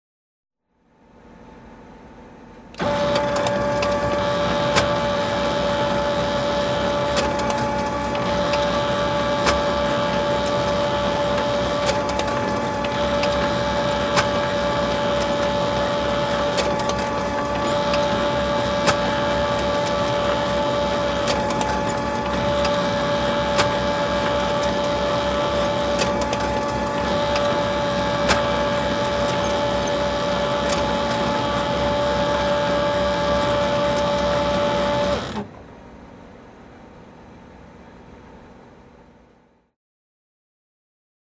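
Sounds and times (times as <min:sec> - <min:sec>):
office photocopier scanning and printing: 0:02.8 - 0:35.5.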